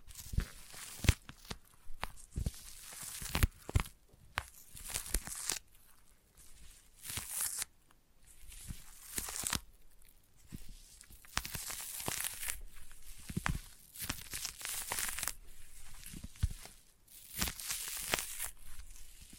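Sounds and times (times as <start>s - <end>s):
sticky peeling and crackling tears: 0.2s - 3.9s, 4.5s - 5.6s, 11.2s - 12.6s, 13.3s - 15.4s, 16.1s - 19.0s.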